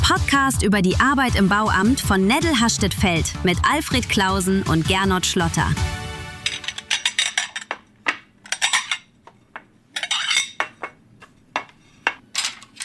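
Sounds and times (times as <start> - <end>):
speech: 0.1 - 6.0
dishes clattering: 6.5 - 12.8.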